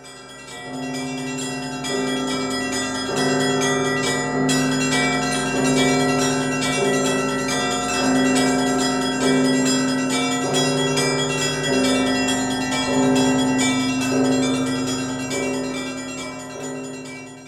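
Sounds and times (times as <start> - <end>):
festive Easter peal of church bells: 0.0 - 17.4.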